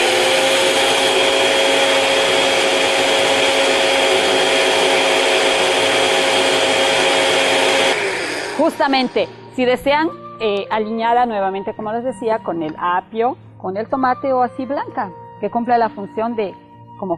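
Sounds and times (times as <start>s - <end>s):
blender whirring a liquid mixture with salt: 0.0s - 9.6s
speech: 8.8s - 17.1s.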